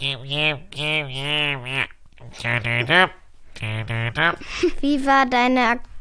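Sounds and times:
person imitating a stuffy congested voice with nasal sounds: 0.0 - 4.8
speech: 0.0 - 5.9.

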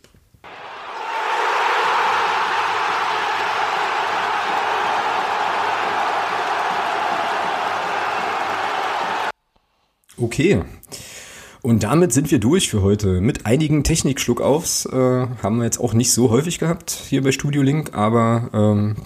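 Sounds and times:
large crowd cheering and roaring: 0.5 - 9.4
speech: 10.2 - 19.0.

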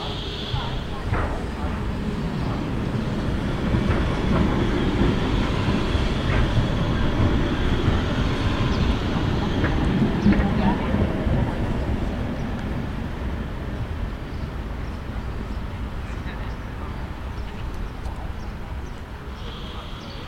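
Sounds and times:
rail clatter: 0.0 - 20.2
train rumbling past: 0.0 - 20.2.

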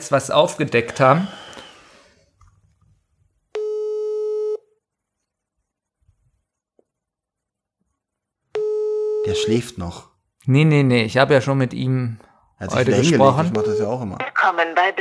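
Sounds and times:
speech: 0.0 - 1.4, 9.4 - 14.9
ringback tone of an outgoing telephone call: 3.6 - 4.6, 8.6 - 9.4.

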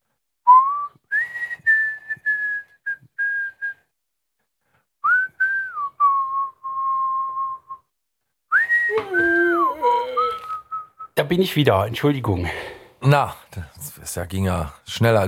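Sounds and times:
person whistling a simple tune: 0.5 - 3.9, 5.0 - 7.9, 8.5 - 11.2
speech: 11.2 - 15.2.

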